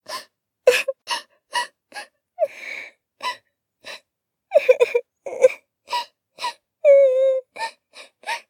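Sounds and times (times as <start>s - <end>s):
person crying: 0.7s - 1.0s, 4.5s - 5.6s, 6.9s - 7.5s.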